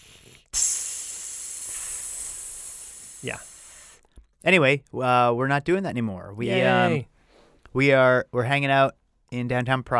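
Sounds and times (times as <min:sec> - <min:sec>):
steady bright airy hissing sound effect: 0:00.0 - 0:04.1
speech: 0:03.2 - 0:03.5, 0:04.4 - 0:07.1, 0:07.7 - 0:09.9.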